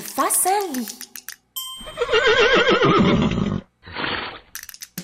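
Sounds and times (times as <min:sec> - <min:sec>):
sharp clicks: 0:00.0 - 0:01.4
speech: 0:00.2 - 0:01.1, 0:01.8 - 0:03.3
horse whinnying in a large stable: 0:01.8 - 0:04.6.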